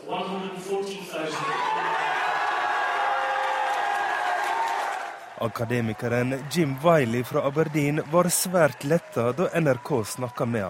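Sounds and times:
large crowd cheering and shouting at referendum result: 1.2 - 10.6
speech: 5.4 - 10.6.

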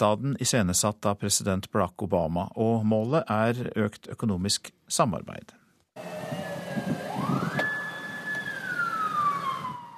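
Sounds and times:
speech: 0.0 - 5.6
low rumble of city traffic: 6.0 - 9.9
police siren wailing in Washington: 6.0 - 9.9.

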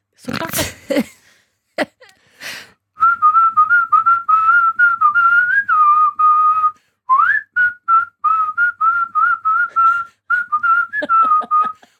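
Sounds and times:
speech: 0.2 - 1.1
person whistling a pop tune live: 3.0 - 11.9
laughter: 10.9 - 11.9.

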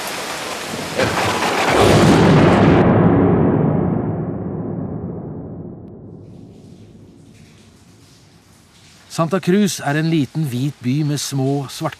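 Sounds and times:
steady pouring rain in a heavy storm: 0.0 - 2.9, 6.1 - 11.9
rumbling thunderclap in a heavy storm: 0.6 - 9.1
speech: 9.2 - 11.9.

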